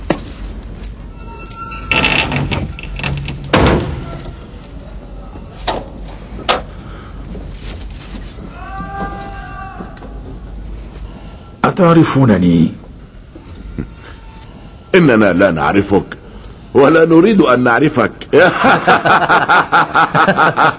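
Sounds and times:
heavy door sliding and swinging shut with a solid thud: 1.9 - 4.5
speech: 11.8 - 12.8, 15.0 - 20.7
laughter: 18.3 - 20.7.

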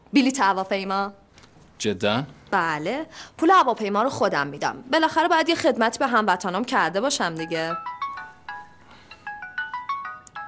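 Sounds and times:
speech: 0.1 - 1.2, 1.8 - 7.9
mobile phone ringtone: 7.4 - 10.4.

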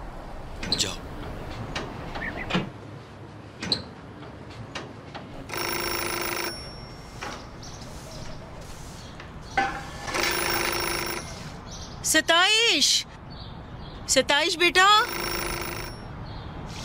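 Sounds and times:
speech: 0.8 - 1.1, 12.1 - 13.1, 14.1 - 15.4
telephone ringing: 5.4 - 11.7, 14.8 - 16.2.

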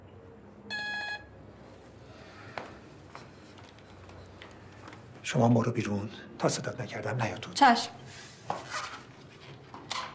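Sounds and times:
telephone keypad tone as a phone is dialed: 0.7 - 1.3
speech: 5.3 - 8.2.

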